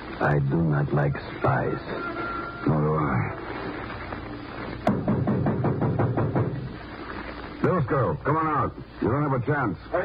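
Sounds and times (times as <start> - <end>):
speech: 0.2 - 3.4, 7.9 - 10.0
sharp knocks on a door: 4.9 - 6.7.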